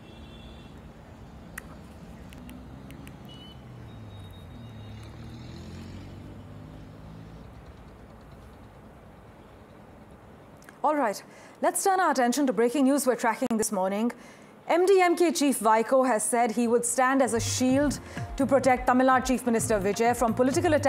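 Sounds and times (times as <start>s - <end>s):
vehicle engines droning: 0.0s - 10.6s
vehicles moving through water on the waterlogged Delhi-Lucknow road in Hapur: 0.8s - 10.1s
speech: 10.8s - 20.8s.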